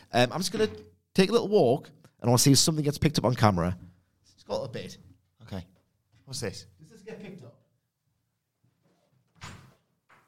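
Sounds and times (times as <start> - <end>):
speech: 0.1 - 5.7, 6.3 - 7.6
door opening and shutting: 0.4 - 0.9, 9.3 - 10.2.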